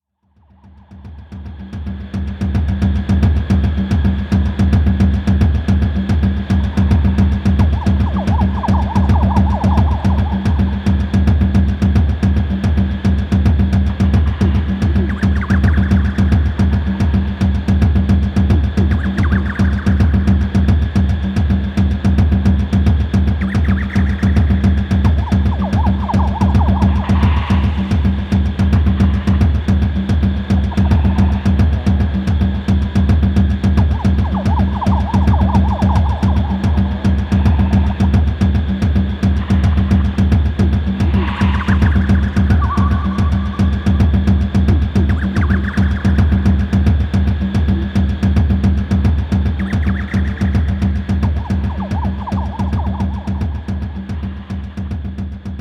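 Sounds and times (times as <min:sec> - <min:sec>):
jungle drums: 0:00.5 - 0:55.5.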